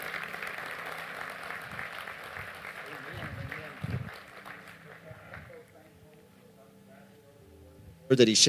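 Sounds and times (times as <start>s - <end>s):
audience clapping hands: 0.0s - 5.8s
speech: 8.1s - 8.4s.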